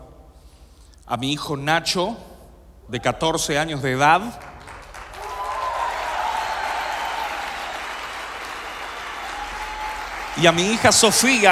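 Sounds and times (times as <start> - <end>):
speech: 1.1 - 2.3, 2.9 - 4.5, 10.4 - 11.4
audience applause: 4.4 - 11.4.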